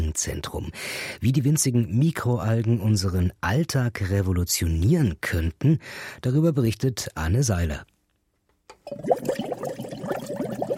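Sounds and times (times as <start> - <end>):
speech: 0.2 - 7.9, 8.9 - 9.4
green water rushing and gurgling through a pipe system in an algae lab: 8.8 - 10.7.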